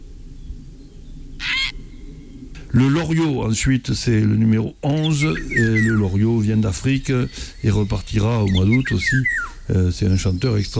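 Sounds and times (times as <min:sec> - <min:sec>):
grey heron call: 0:01.4 - 0:01.9, 0:09.2 - 0:09.7
speech: 0:02.7 - 0:10.7.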